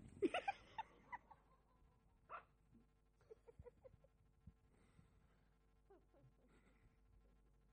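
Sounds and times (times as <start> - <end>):
people laughing: 0.1 - 1.9, 3.2 - 4.2
small terrier barking in sharp yaps: 2.3 - 2.6.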